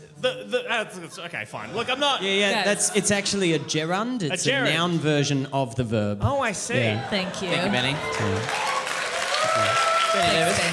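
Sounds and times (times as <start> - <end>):
speech: 0.2 - 8.7, 9.6 - 10.7
audience applause: 7.0 - 10.7.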